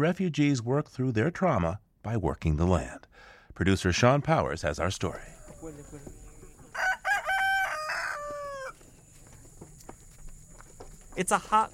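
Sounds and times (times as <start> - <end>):
speech: 0.0 - 6.2, 11.2 - 11.7
chickens clucking at a community garden farm: 5.1 - 10.9
rooster crowing at a community garden farm: 6.6 - 9.0.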